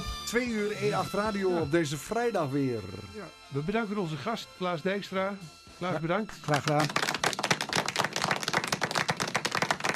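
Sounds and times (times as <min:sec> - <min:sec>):
speech: 0:00.3 - 0:07.1
small group clapping: 0:06.4 - 0:09.9.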